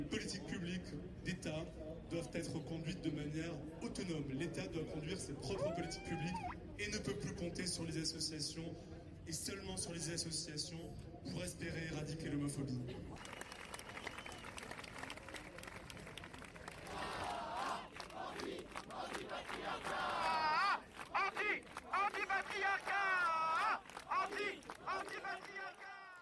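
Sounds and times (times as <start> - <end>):
dense continuous murmur of a protest rally crowd: 0.0 - 13.2, 15.0 - 26.2
speech: 0.0 - 13.5
scattered whistles at a protest rally: 13.2 - 14.7
large outdoor protest rally crowd shouting and chanting: 16.8 - 26.2.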